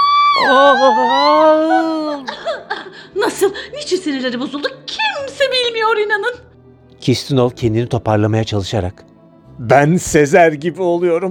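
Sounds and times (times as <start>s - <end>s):
woman imitating a loud high-pitched scream: 0.0s - 2.7s
laughter: 0.3s - 4.8s
speech: 0.4s - 2.4s, 3.2s - 11.3s.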